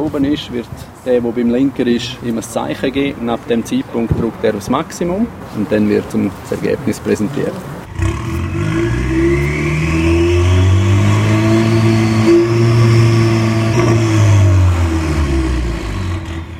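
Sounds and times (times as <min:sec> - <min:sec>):
speech: 0:00.0 - 0:07.7
car engine revved hard to maximum during a police check: 0:07.8 - 0:16.5.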